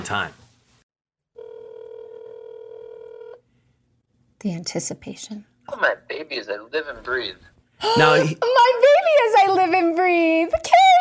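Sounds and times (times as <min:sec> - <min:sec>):
speech: 0:00.0 - 0:00.4, 0:04.4 - 0:10.9
phone tone while placing a call: 0:01.4 - 0:03.4.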